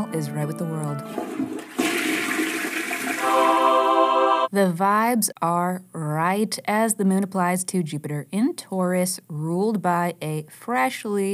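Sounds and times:
speech: 0:00.1 - 0:01.6, 0:04.5 - 0:11.3
toilet flushing: 0:01.0 - 0:04.5.

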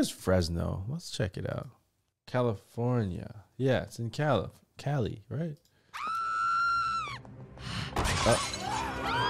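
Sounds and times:
speech: 0:00.0 - 0:06.1, 0:07.6 - 0:08.6
window glass being smashed by a woman: 0:08.0 - 0:09.1.

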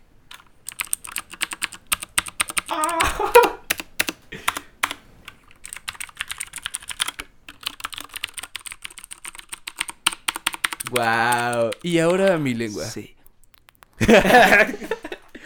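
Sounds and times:
keystrokes on a mechanical PC gaming keyboard while playing video games: 0:00.3 - 0:03.0, 0:03.7 - 0:12.2
laughter: 0:02.8 - 0:03.6, 0:14.0 - 0:15.4
speech: 0:11.0 - 0:13.1, 0:14.1 - 0:14.8.

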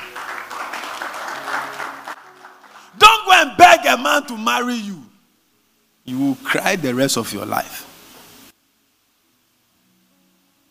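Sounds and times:
audience clapping: 0:00.0 - 0:03.0
speech: 0:03.8 - 0:05.1, 0:06.1 - 0:07.9.

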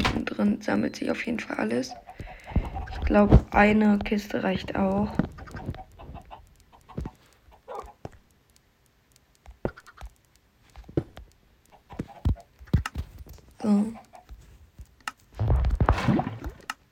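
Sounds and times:
speech: 0:00.4 - 0:02.0, 0:02.9 - 0:05.3
chickens clucking: 0:01.6 - 0:03.3, 0:05.1 - 0:08.2, 0:11.7 - 0:13.0, 0:13.7 - 0:14.4
scratching and rustling: 0:02.0 - 0:16.0.

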